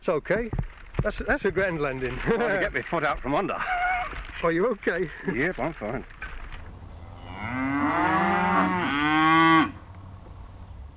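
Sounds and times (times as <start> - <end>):
speech: 0.0 - 3.8, 4.4 - 6.2
cow mooing: 7.0 - 9.8.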